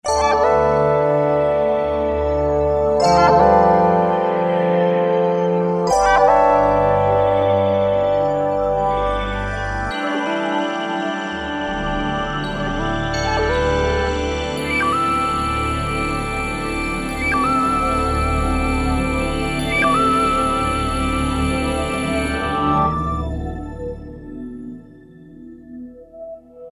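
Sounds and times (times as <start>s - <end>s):
E-mu Morpheus synthesizer pad factory preset: 0.0s - 26.7s.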